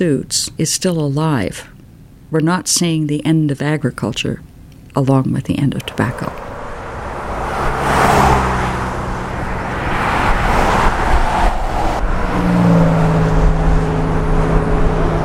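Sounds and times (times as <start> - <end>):
speech: 0.0 - 6.5
road traffic passing: 4.6 - 15.2.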